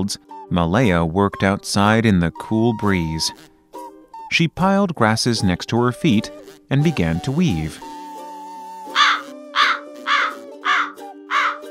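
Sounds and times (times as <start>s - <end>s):
speech: 0.0s - 3.5s, 4.3s - 7.9s
crow cawing harshly: 8.9s - 11.6s.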